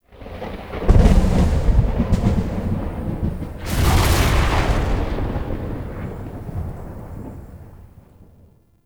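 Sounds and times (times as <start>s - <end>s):
void storm explosion ambience: 0.9s - 7.9s.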